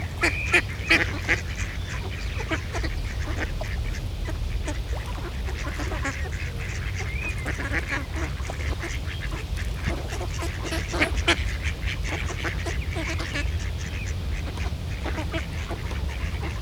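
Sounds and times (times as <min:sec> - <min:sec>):
steady low rumble: 0:00.0 - 0:08.7
several ducks quacking on a pond: 0:00.0 - 0:16.6.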